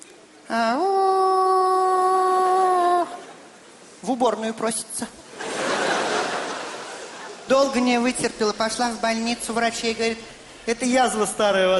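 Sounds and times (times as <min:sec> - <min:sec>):
speech: 0:00.5 - 0:01.0, 0:04.0 - 0:05.2, 0:07.5 - 0:11.7
human voice imitating a dog howling whine: 0:00.5 - 0:03.2
laughter: 0:05.3 - 0:07.5.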